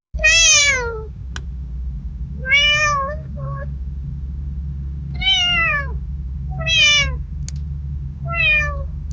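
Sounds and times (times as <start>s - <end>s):
sad cat sound: 0.2s - 1.4s, 2.4s - 3.8s, 5.1s - 7.5s, 8.2s - 9.0s.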